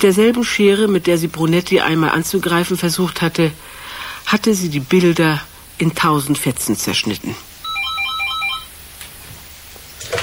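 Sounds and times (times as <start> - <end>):
speech: 0.0 - 7.5
electronic telephone ringtone in a home: 7.6 - 8.7.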